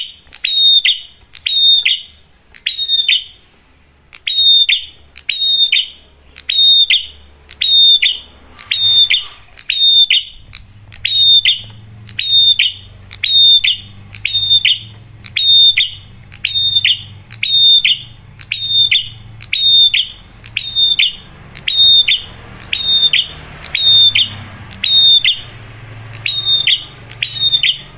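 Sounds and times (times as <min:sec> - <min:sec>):
prinia singing bright high whistled phrases: 0:00.0 - 0:03.5, 0:04.1 - 0:27.9.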